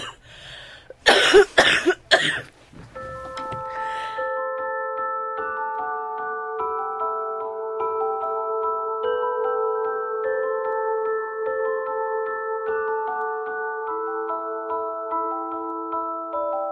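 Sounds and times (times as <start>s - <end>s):
person coughing loudly: 0.0s - 0.2s, 1.0s - 2.5s
soft sustained musical tones: 2.8s - 16.6s.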